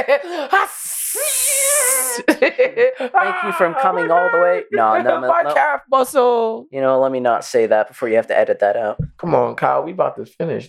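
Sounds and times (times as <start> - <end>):
laughter: 0.0 - 5.8
speech: 0.0 - 10.6
person imitating an angry hissing cat: 0.5 - 2.2.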